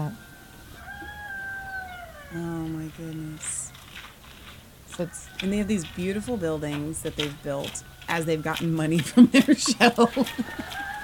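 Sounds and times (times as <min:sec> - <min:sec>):
low hum: 0:00.0 - 0:11.0
cat meowing played from a video: 0:00.8 - 0:02.4
speech: 0:02.3 - 0:03.6, 0:05.0 - 0:10.9
laughter: 0:09.0 - 0:11.0.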